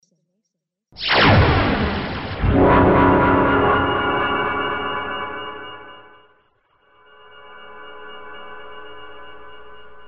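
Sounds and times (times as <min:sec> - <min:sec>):
digital double build sound effect: 0:01.0 - 0:06.3.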